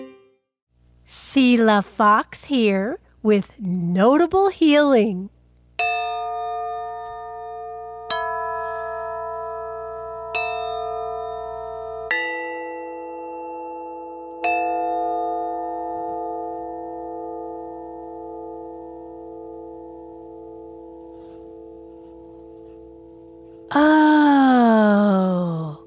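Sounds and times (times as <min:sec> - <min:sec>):
speech: 0:01.6 - 0:06.2
bright resonant chimes being struck: 0:05.8 - 0:25.8
wavering tone: 0:05.8 - 0:25.8.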